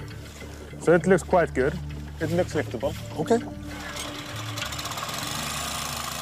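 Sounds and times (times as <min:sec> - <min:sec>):
speech: 0:00.9 - 0:03.6
air compressor pumping air into fabric lifting pontoons on the seafloor: 0:03.7 - 0:06.2.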